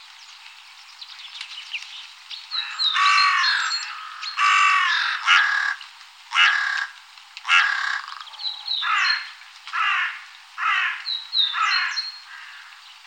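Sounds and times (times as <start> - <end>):
carrion crow giving harsh grating caws in Germany, Austria or Switzerland: 2.6 - 12.8.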